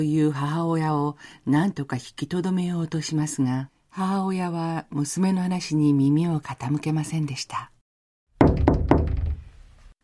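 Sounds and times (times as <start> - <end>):
speech: 0.0 - 7.7
knocking on a fitting room door in a clothing shop: 8.4 - 9.6.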